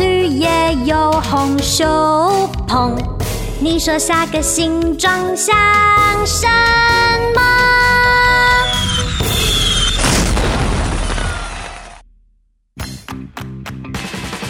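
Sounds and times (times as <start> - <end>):
speech: 0.9 - 7.7
tonal firework whistle: 7.8 - 12.0
loud booming firework burst: 8.5 - 12.2.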